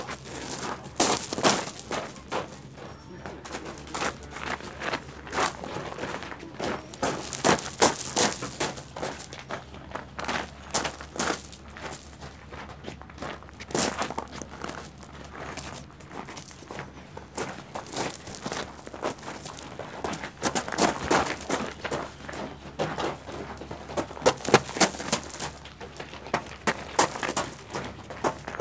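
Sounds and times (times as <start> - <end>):
faint low hum: 0.0 - 28.6
running footsteps crunching over gravel: 0.0 - 28.6.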